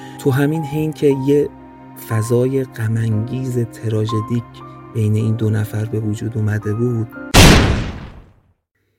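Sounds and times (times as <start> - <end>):
speech: 0.2 - 7.2
gunshot in a room: 7.3 - 8.4.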